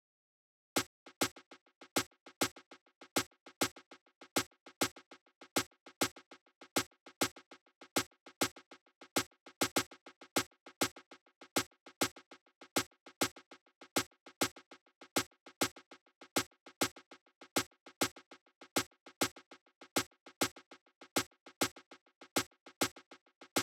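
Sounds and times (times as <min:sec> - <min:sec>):
snappy snare drum: 0:01.2 - 0:23.6.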